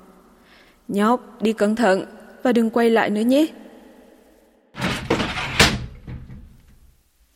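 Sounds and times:
speech: 0:00.9 - 0:03.6
door thudding shut: 0:04.8 - 0:06.8.

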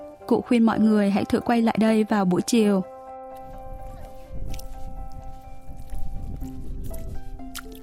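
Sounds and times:
music: 0:00.0 - 0:07.8
speech: 0:00.3 - 0:02.9
bare feet squelching in soft tidal mud and sand: 0:03.4 - 0:07.8.

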